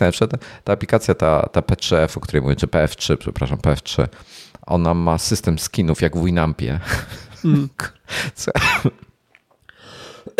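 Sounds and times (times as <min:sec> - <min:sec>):
speech: 0:00.0 - 0:09.1
man coughing after choking on his own saliva: 0:07.4 - 0:09.1.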